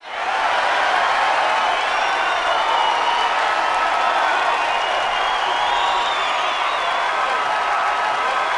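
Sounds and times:
BMX crowd cheering: 0:00.0 - 0:08.5.

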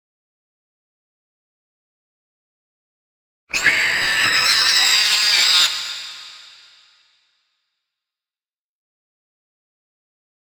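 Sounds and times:
giant rat squealing: 0:03.5 - 0:06.6.

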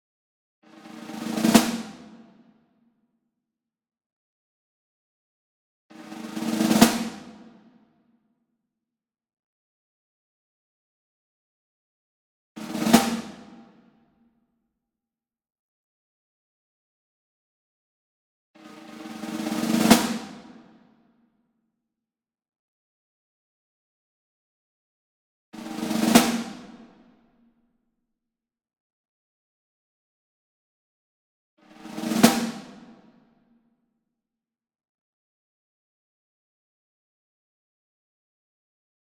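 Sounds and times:
single snare drum medium roll: 0:00.8 - 0:02.2, 0:06.0 - 0:07.5, 0:12.6 - 0:13.6, 0:18.6 - 0:20.6, 0:25.6 - 0:26.9, 0:31.7 - 0:33.0.

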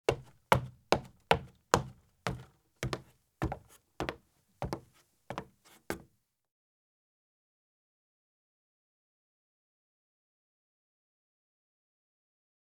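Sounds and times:
light running shoes walking up steps: 0:00.1 - 0:06.0.

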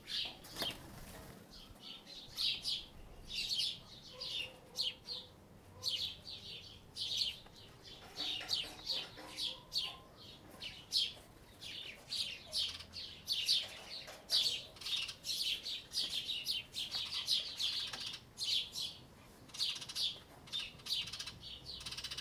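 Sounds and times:
birds in a yard: 0:00.0 - 0:22.1.

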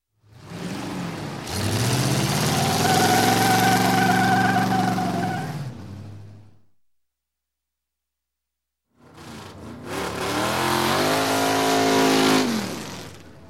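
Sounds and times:
stock car drag race engines: 0:00.2 - 0:06.5, 0:09.0 - 0:13.4.

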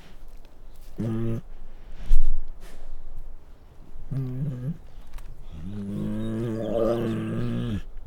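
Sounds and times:
male Bengal tiger growling and snarling: 0:00.8 - 0:01.6, 0:03.8 - 0:07.9.

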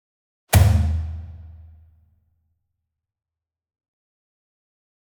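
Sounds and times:
single Kodo drum hit with medium whip beater, cinematic strike: 0:00.6 - 0:01.3.

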